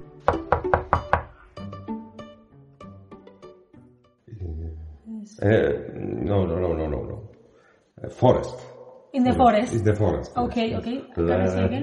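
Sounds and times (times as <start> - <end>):
sharp knocks on a door: 0.3 - 1.4
speech: 5.3 - 7.2, 8.0 - 11.8.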